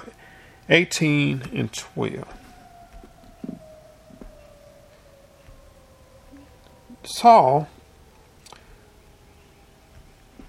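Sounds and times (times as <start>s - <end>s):
tornado warning siren wailing: 0.0s - 10.4s
speech: 0.7s - 2.4s, 7.2s - 7.7s
soft knocks: 2.3s - 6.6s.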